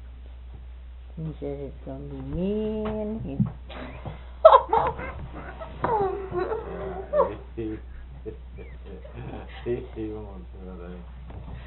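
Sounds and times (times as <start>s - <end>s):
low steady hum: 0.0s - 11.6s
speech: 1.2s - 6.5s, 7.6s - 11.6s
laughter: 3.7s - 10.3s
small dog whimpering and whining: 4.9s - 7.4s.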